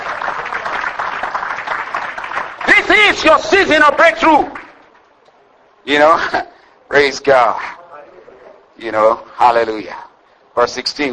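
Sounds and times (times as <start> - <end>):
congregation clapping hands during a church service: 0.0 - 5.1
speech: 3.1 - 4.6, 5.8 - 7.8, 8.8 - 10.0, 10.6 - 11.1.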